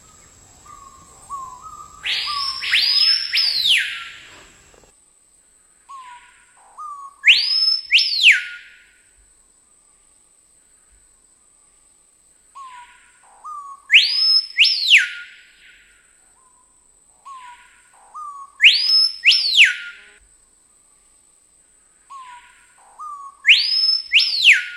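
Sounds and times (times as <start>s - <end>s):
screaming piha song of loud piercing whistles: 0.0s - 4.7s, 6.8s - 8.9s, 13.4s - 15.9s, 17.3s - 20.2s, 23.0s - 24.7s.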